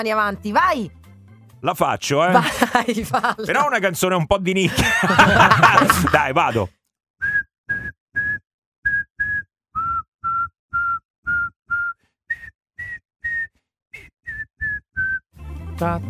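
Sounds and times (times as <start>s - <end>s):
speech: 0.0s - 1.0s, 1.6s - 6.8s, 15.8s - 16.0s
laughter: 2.2s - 6.7s
person whistling a song melody: 7.2s - 15.3s.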